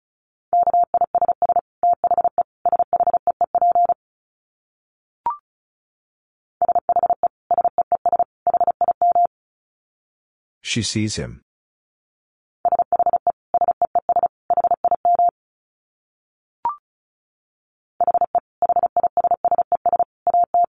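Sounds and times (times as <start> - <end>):
Morse code beeps at 35 words per minute: 0.6 - 4.0, 6.6 - 9.3, 12.7 - 15.3, 18.0 - 20.7
speech: 10.7 - 11.5.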